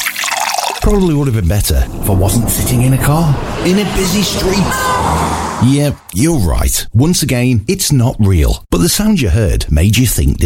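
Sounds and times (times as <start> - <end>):
drink pouring into a glass: 0.0 - 1.0
speech: 0.9 - 10.4.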